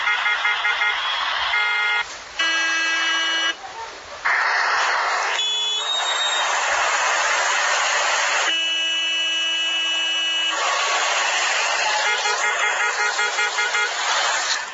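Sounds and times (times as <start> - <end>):
car horns honking in a traffic jam on Séptima at Calle 85: 0.0 - 3.6, 5.3 - 6.5, 8.4 - 14.7
street noise: 0.0 - 14.7.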